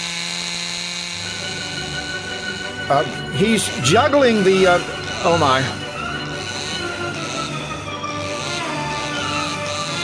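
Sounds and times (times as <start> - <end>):
chainsaw engine starting and running: 0.0 - 10.0
speech: 2.9 - 5.8.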